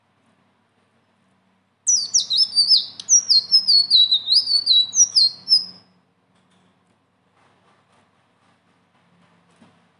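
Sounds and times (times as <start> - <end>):
leafbird singing with high slurred whistles and chirps: 1.9 - 5.9.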